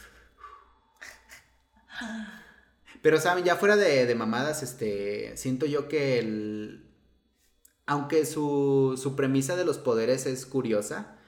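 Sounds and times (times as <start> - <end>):
person breathing heavily and gasping for air: 0.0 - 2.8
speech: 2.0 - 2.4, 3.0 - 6.9, 7.9 - 11.2.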